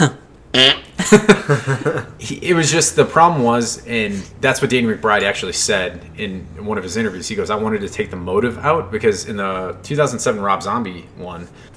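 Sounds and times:
hand fart: 0:00.0 - 0:01.3
speech: 0:00.0 - 0:11.7
laughter: 0:01.0 - 0:02.2.

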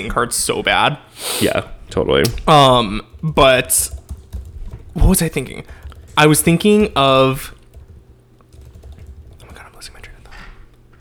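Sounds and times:
speech: 0:00.0 - 0:04.0, 0:05.0 - 0:07.6
low steady hum: 0:00.0 - 0:11.0
frantic typing on a computer keyboard: 0:03.1 - 0:10.2.

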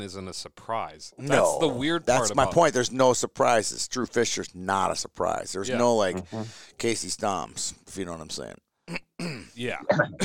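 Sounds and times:
speech: 0:00.0 - 0:10.2
cough with a throaty rasp: 0:08.9 - 0:10.2.

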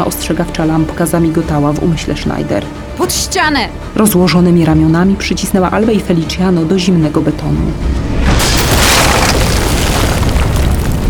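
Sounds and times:
speech: 0:00.0 - 0:08.0
loud explosion boom: 0:07.6 - 0:11.0
tons of rubble and earth collapsing: 0:07.8 - 0:11.0.

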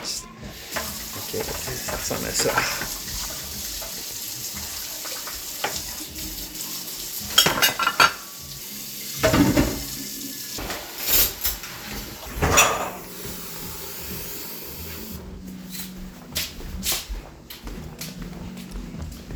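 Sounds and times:
pots and utensils clinking while dishes are washed: 0:00.0 - 0:15.2
running tap water hissing at a sink: 0:00.0 - 0:15.3
speech: 0:01.3 - 0:03.1.

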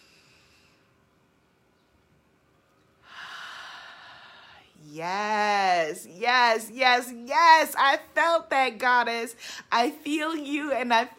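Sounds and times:
deep breath drawn in during a guided breathing exercise: 0:03.0 - 0:04.7
speech: 0:04.9 - 0:11.1.

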